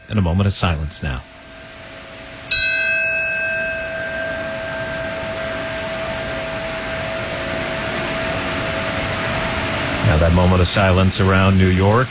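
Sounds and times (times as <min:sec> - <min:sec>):
memorial bell tolling: 0:00.0 - 0:09.8
steady low hum: 0:00.0 - 0:12.0
speech: 0:00.1 - 0:01.4, 0:10.2 - 0:12.0.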